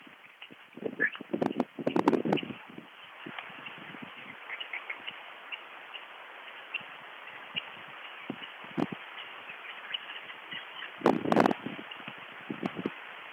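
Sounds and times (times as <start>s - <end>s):
rock partridge calling in the Allgäu Alps: 0.0s - 13.3s.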